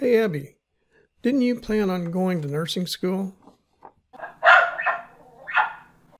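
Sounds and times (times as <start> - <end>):
speech: 0.0 - 0.6, 1.2 - 3.4
dog barking: 4.2 - 6.0.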